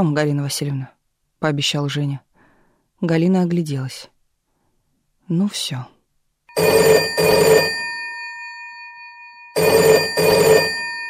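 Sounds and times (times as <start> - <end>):
speech: 0.0 - 2.3, 3.0 - 4.1, 5.3 - 6.0
old telephone bell ringing: 6.5 - 11.0.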